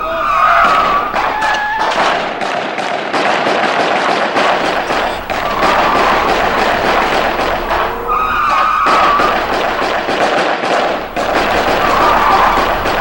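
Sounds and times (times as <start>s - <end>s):
high screeching tones: 0.0s - 2.4s, 4.6s - 10.3s, 10.9s - 12.9s
explosions: 0.0s - 12.9s
rapid repeated gunshots: 0.0s - 12.9s.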